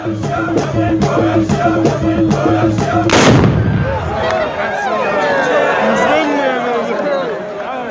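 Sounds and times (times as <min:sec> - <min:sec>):
rhythmic drumming: 0:00.0 - 0:04.1
people singing: 0:00.0 - 0:04.2
crowd chattering and calling out: 0:00.0 - 0:07.8
loud rifle shot during a traditional dance: 0:03.1 - 0:04.1.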